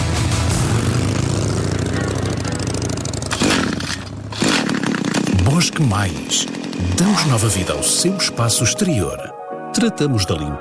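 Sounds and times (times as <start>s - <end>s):
motorcycle engine accelerating with a rough roar: 0.0s - 8.0s
speech: 5.7s - 10.5s.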